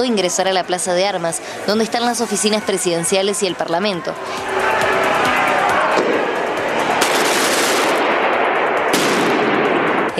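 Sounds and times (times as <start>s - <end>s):
speech: 0.0s - 4.9s
crowd of protesters noise and shouting: 0.0s - 10.1s
firecrackers and cut cylinders of dynamite banging during a street clash: 4.3s - 10.1s.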